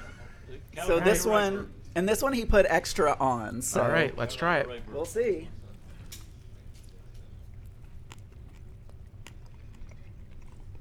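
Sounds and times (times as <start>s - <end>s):
speech: 0.8s - 5.6s
wet chewing of food coated in garlic hot sauce: 5.6s - 10.8s
low rumble: 5.8s - 10.8s
sharp crunchy bites: 6.0s - 10.8s.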